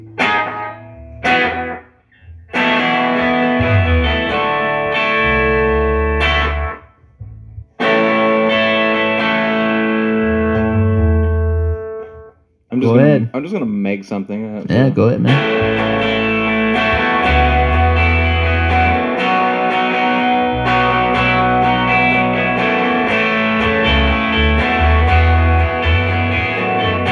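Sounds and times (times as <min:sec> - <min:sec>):
electric guitar playing bright chords with quick slapback echo: 0:00.0 - 0:13.3, 0:14.8 - 0:27.0
speech: 0:13.5 - 0:15.5.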